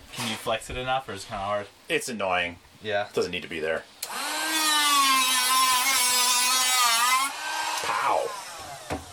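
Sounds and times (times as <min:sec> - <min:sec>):
speech: 0:00.4 - 0:04.0
power tool grinding rust off metal: 0:04.1 - 0:09.1.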